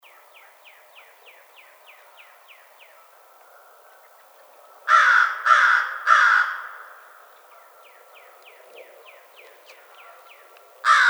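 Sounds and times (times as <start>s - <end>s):
American crow cawing: 4.9s - 7.8s, 10.8s - 11.0s.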